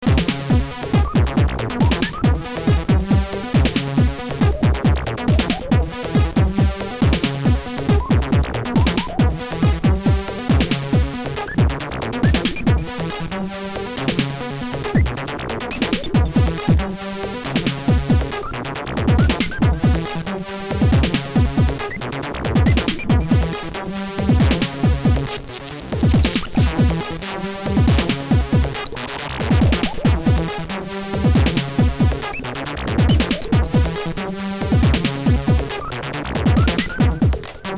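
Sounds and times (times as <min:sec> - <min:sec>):
filtered FM beats: 0:00.0 - 0:37.7.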